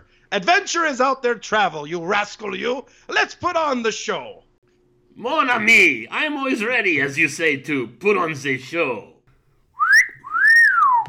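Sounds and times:
speech: 0.3s - 4.4s, 5.2s - 9.1s
loud whistles: 9.8s - 11.0s.

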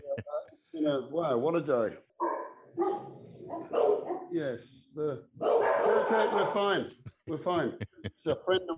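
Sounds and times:
laughter: 0.0s - 0.4s, 6.1s - 8.7s
speech: 0.8s - 2.1s, 3.7s - 8.7s
dogs barking: 2.2s - 4.4s, 5.4s - 6.8s.

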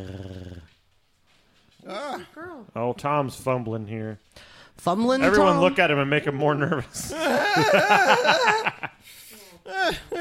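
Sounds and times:
speech: 0.0s - 0.2s, 1.9s - 9.2s
dog growling: 0.0s - 0.8s, 1.8s - 2.6s
laughter: 7.0s - 9.0s.

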